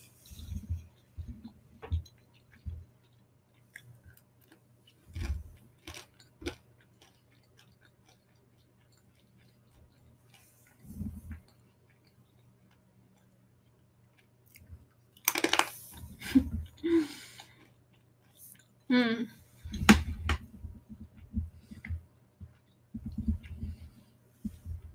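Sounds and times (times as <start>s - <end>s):
crunchy chewing of crisp air-fried sweet potato fries with coconut vinegar: 0.1s - 24.9s.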